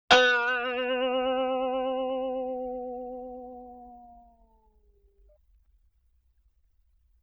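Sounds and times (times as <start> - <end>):
high vintage cartoon boing from a box: 0.1 - 4.7.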